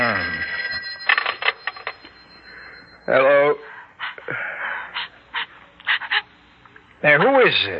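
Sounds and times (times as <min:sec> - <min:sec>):
telephone bell ringing: 0:00.0 - 0:03.6
speech: 0:03.1 - 0:03.3, 0:07.2 - 0:07.7.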